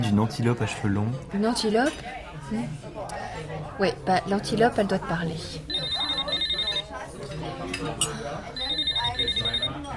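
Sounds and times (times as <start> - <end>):
speech: 0.2 - 6.0
voices chattering and murmuring: 1.2 - 9.9
telephone ringing with trilling bell tones: 5.7 - 7.0, 8.5 - 9.9.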